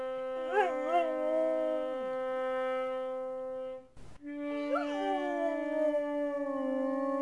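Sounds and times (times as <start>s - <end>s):
brass horn playing scales: 0.0s - 4.8s
puppy howling: 0.5s - 1.9s, 4.7s - 7.1s.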